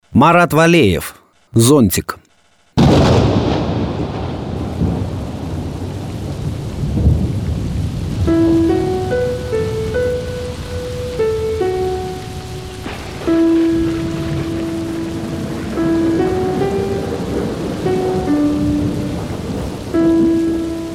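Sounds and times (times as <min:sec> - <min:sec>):
speech: 0:00.2 - 0:02.2
deep rumbling thunder: 0:02.8 - 0:20.9
heavy rain: 0:02.8 - 0:20.9
soft melodic tune: 0:08.2 - 0:20.9.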